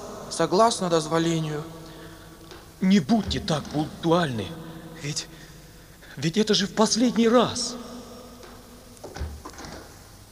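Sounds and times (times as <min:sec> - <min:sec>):
speech: 0:00.4 - 0:01.8, 0:02.8 - 0:05.4, 0:06.2 - 0:07.9
door closing with soft thud: 0:03.1 - 0:04.4, 0:08.4 - 0:10.0.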